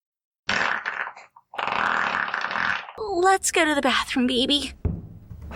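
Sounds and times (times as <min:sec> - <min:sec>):
loud rasping sputtering fart: 0:00.4 - 0:03.0
speech: 0:03.0 - 0:04.8.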